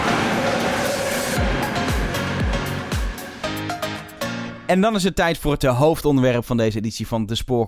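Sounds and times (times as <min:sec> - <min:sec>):
large train rushing past at Schiedam Centrum: 0:00.0 - 0:04.6
speech: 0:04.7 - 0:07.6.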